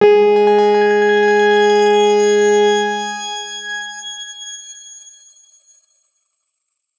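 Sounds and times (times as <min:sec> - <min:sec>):
X Grain G sharp 3 note played fortissimo: 0:00.0 - 0:04.9.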